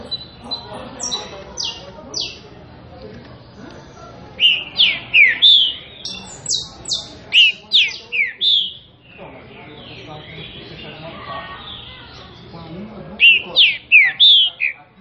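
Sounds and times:
green-winged saltator whistled song in classic style: 0.1 - 2.4, 4.4 - 8.9, 13.2 - 14.8.

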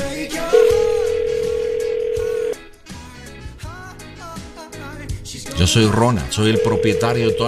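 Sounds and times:
telephone dial tone while a call is being redialed: 0.6 - 2.6, 6.5 - 7.4
speech: 5.6 - 7.4.

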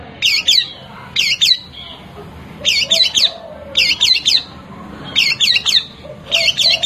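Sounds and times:
long-tailed shrike singing combination song: 0.2 - 6.8.

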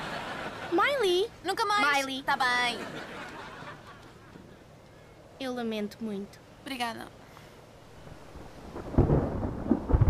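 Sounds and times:
laughter: 0.0 - 1.0, 2.4 - 4.7
speech: 0.7 - 3.4, 5.4 - 7.2
deep rolling thunder from an approaching storm: 8.1 - 10.0.

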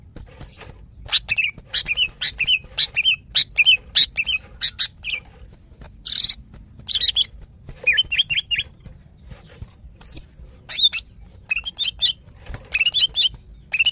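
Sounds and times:
female greater green leafbird chirping and whistling, calling to a male: 0.4 - 5.2, 6.0 - 7.3, 7.9 - 8.7, 9.9 - 13.9.

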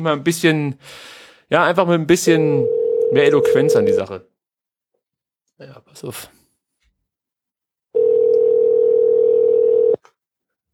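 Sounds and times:
speech: 0.0 - 4.3, 5.6 - 6.4
telephone ringback tone on an unanswered call: 2.6 - 4.0, 8.0 - 10.0.

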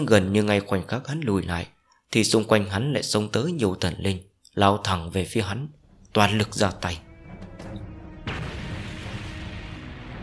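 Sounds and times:
speech: 0.0 - 7.0
explosion sound effect boom: 7.1 - 10.2.

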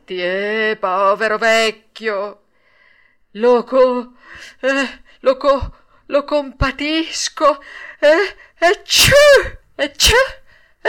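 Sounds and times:
speech: 0.1 - 2.4, 3.3 - 10.8
voice acting out sneezes for a character in a spoken story: 8.8 - 10.5.

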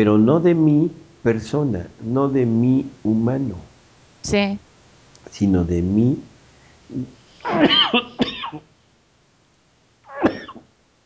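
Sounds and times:
speech: 0.0 - 4.6, 5.3 - 6.3, 6.9 - 8.7
person coughing: 7.0 - 8.7, 10.1 - 10.7.

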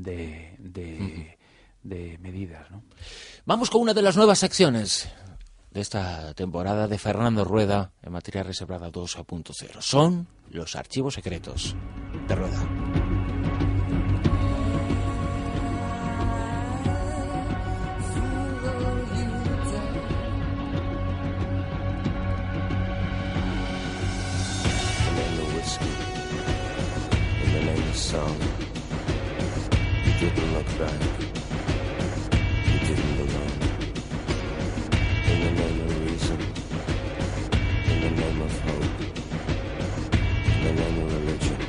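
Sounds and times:
speech: 0.0 - 12.8, 28.0 - 28.6, 30.5 - 31.4
instrumental film theme music: 10.0 - 41.6.

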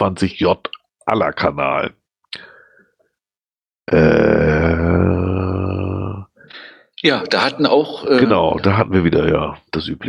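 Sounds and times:
speech: 0.0 - 2.5, 3.9 - 4.8, 7.0 - 10.0
person letting out a long loud deep burp: 3.9 - 6.3.

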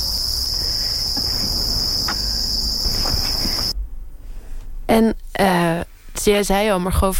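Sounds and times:
crickets kept and bred by a breeder chirping: 0.0 - 4.9
speech: 4.9 - 5.5, 6.2 - 7.1.

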